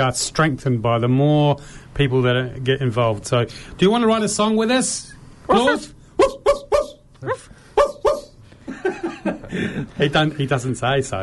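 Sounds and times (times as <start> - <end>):
speech: 0.0 - 6.0, 10.0 - 11.2
dog barking in short sharp yaps: 6.2 - 7.0, 7.8 - 8.4.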